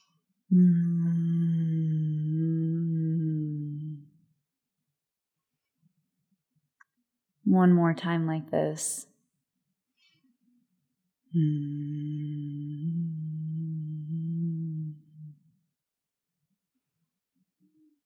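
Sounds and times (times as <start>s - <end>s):
speech: 0.5s - 0.9s, 7.6s - 9.1s, 11.4s - 13.1s
closed-mouth humming on the exhale: 0.5s - 4.0s, 11.4s - 15.4s.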